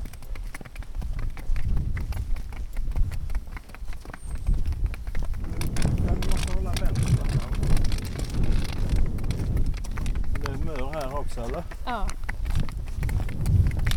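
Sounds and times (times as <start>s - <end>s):
miniature horse hooves clattering on asphalt footpath: 0.0s - 13.9s
wind blowing over open fields buffeting the microphone: 4.7s - 11.3s, 12.4s - 13.9s.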